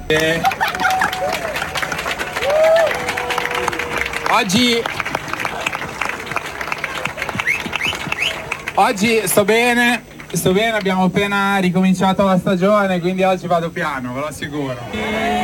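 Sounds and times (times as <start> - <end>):
crowd whistles: 0.0 - 11.0, 14.5 - 15.4
crowd clapping for a swimmer at a group sea swim: 0.0 - 15.4
laughter: 0.0 - 15.4
speech: 0.1 - 0.6, 4.3 - 5.0, 8.8 - 15.4.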